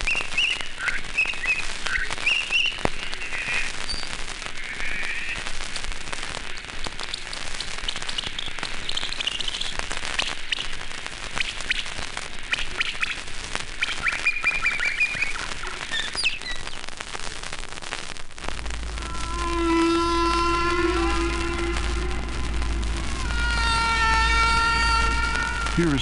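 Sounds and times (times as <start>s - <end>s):
constant hissy background: 0.0s - 26.0s
humpback whale song sped up to a high birdlike pitch: 18.7s - 26.0s.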